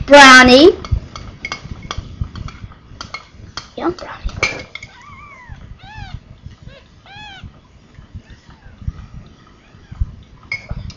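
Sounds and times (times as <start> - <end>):
speech: 0.1 - 0.8, 3.8 - 4.3
newborn kitten mewing: 4.9 - 7.6.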